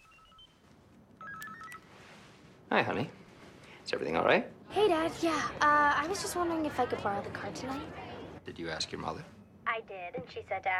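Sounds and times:
mobile phone ringing with electronic tone bursts: 0:00.0 - 0:02.2
low noise: 0:00.0 - 0:10.7
speech: 0:02.7 - 0:03.2, 0:03.9 - 0:10.7.

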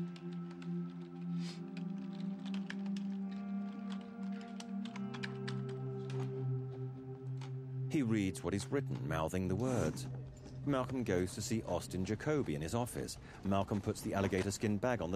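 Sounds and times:
typing on a computer keyboard at home: 0:00.0 - 0:06.4
constant low tonal hum: 0:00.0 - 0:13.1
speech: 0:07.9 - 0:15.1.

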